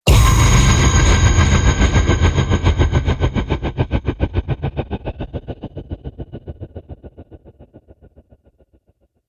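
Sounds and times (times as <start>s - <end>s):
epic hit: 0.1s - 5.5s.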